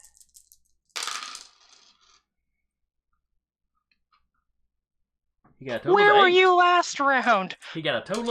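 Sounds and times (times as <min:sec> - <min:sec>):
six-sided dice clattering onto a table during a tabletop role-playing game: 0:00.0 - 0:02.3
speech: 0:05.6 - 0:08.2.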